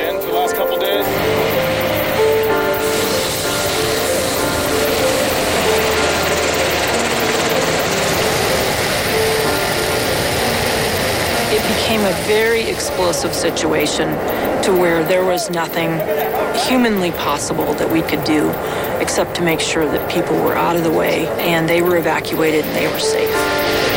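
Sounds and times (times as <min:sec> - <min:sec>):
helicopter engine and rotor flying over a wildfire: 0:00.0 - 0:23.9
faint indistinct voices: 0:11.5 - 0:23.6
speech: 0:12.3 - 0:23.9.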